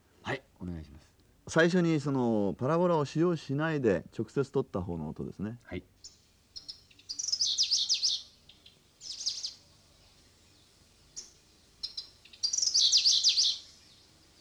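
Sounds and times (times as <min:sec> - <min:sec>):
speech: 0:01.5 - 0:05.9
bird trilling: 0:06.0 - 0:09.6, 0:11.1 - 0:13.7
bird chirps: 0:06.0 - 0:14.3.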